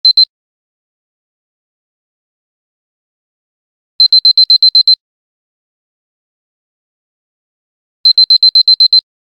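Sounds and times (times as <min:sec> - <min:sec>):
alarm: 0:00.1 - 0:00.3, 0:04.0 - 0:05.0, 0:08.1 - 0:09.0.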